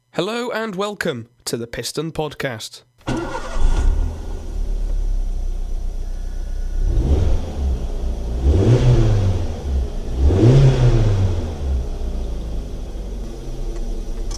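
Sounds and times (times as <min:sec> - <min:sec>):
speech: 0:00.2 - 0:03.4
small 1-litre Toyota Yaris car engine idling and revving: 0:03.1 - 0:14.3.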